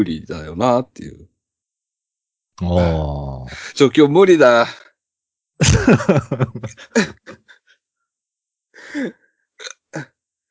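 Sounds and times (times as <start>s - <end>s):
speech: 0.0s - 1.3s, 2.6s - 4.8s, 5.6s - 7.3s, 8.9s - 9.2s
choppy gasping vocal sounds: 2.6s - 3.8s, 8.8s - 9.8s
laughter: 5.6s - 7.5s
short sharp hiccups: 9.6s - 10.0s.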